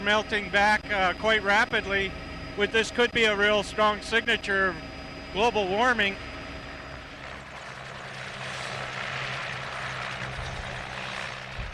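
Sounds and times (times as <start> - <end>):
speech: 0.0 - 6.3
helicopter engine roar while landing: 0.0 - 11.7.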